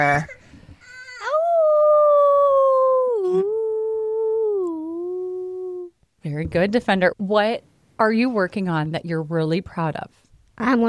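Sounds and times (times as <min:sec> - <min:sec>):
speech: 0:00.0 - 0:00.4, 0:06.3 - 0:10.8
child howling imitating a wolf: 0:01.0 - 0:05.9.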